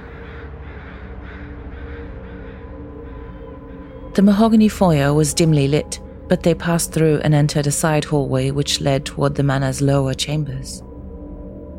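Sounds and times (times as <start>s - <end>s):
crows cawing: 0.0s - 4.3s
steady low rumble: 0.0s - 11.7s
speech: 4.2s - 10.9s.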